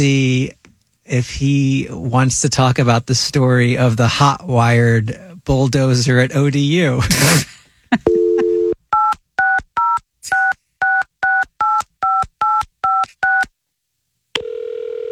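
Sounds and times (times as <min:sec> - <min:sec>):
speech: 0:00.0 - 0:08.1
steady telephone tone: 0:08.0 - 0:13.5, 0:14.4 - 0:15.1
telephone number being dialed with touch tones: 0:08.1 - 0:13.4.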